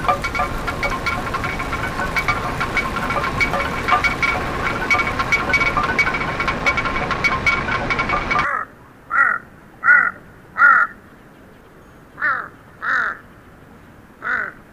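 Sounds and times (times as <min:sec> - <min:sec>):
water-powered grain mill grinding: 0:00.0 - 0:08.4
large crow giving harsh croaking caws: 0:08.5 - 0:11.0, 0:12.2 - 0:13.3, 0:14.2 - 0:14.6.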